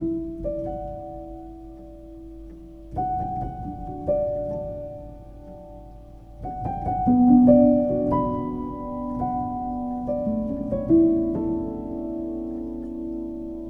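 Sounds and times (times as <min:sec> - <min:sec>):
piano keys: 0:00.0 - 0:13.6.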